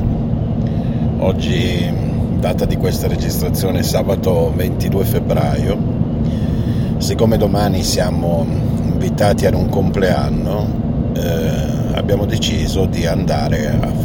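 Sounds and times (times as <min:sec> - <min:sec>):
low rumble of road noise inside a moving car: 0:00.0 - 0:14.0
speech: 0:01.2 - 0:06.4, 0:07.0 - 0:14.0.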